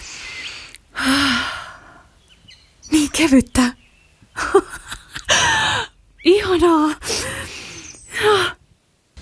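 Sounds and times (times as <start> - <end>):
person breathing deeply: 0.0 - 2.2, 7.0 - 8.6
speech: 3.2 - 3.8
laughter: 4.4 - 5.8.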